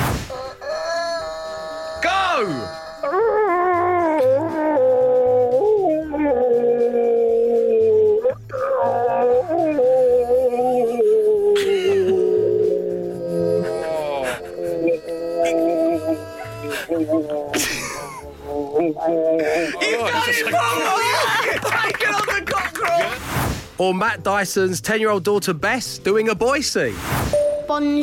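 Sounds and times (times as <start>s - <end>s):
cockerel crowing: 0.3s - 3.2s, 13.1s - 17.1s
person imitating a rooster crowing in a cockerel-off contest: 0.3s - 17.5s
laughter: 10.4s - 23.2s
speech: 24.1s - 28.0s.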